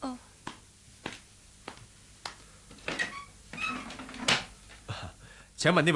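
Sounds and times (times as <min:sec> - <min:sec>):
squeaky door creak: 0:02.8 - 0:04.5
speech: 0:05.6 - 0:05.9.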